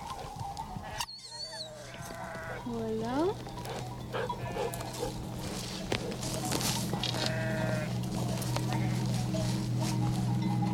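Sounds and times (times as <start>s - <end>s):
clinks and shuffling of many sheep: 0.0s - 10.7s
flock of ewes bleating: 1.7s - 2.6s, 4.2s - 5.2s, 7.0s - 9.2s
speech: 2.7s - 4.4s.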